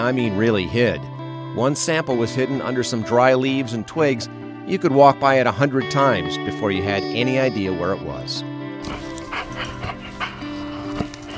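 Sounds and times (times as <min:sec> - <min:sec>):
speech: 0:00.0 - 0:09.0
search dog barking in the woods: 0:08.8 - 0:11.3.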